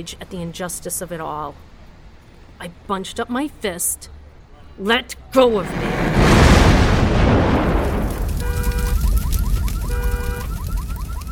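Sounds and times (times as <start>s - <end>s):
speech: 0.0s - 1.8s, 2.6s - 4.2s, 4.8s - 6.3s
garbage bin in a courtyard exploding in flames: 5.6s - 11.3s
warbling alarm-like tone: 8.4s - 11.3s.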